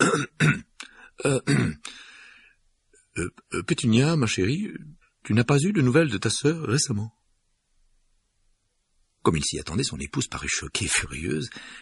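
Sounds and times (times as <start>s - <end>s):
man nervously clearing his throat: 0.0s - 1.9s
speech: 1.2s - 1.9s, 3.2s - 7.2s, 9.2s - 11.8s.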